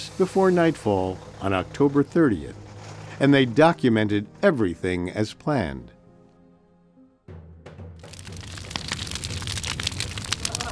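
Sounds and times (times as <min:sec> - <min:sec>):
large bonfire crackling and popping: 0:00.0 - 0:04.5, 0:08.0 - 0:10.7
speech: 0:00.2 - 0:02.6, 0:03.2 - 0:06.0.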